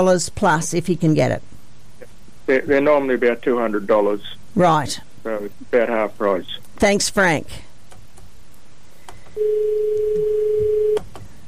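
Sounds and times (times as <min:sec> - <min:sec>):
speech: 0:00.0 - 0:01.5, 0:02.5 - 0:07.7, 0:09.4 - 0:11.1
faint noise: 0:00.0 - 0:11.4
steady electronic telephone line tone: 0:09.4 - 0:11.0.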